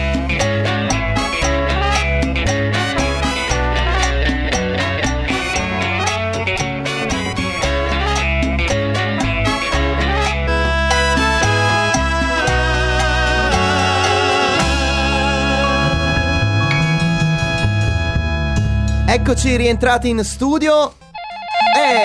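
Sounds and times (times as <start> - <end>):
Cuban-style cover of an indie rock song: 0.0 - 22.0
speech: 19.3 - 21.0, 21.8 - 22.0
telephone ringing with electronic warbling tones for an incoming call: 20.9 - 22.0.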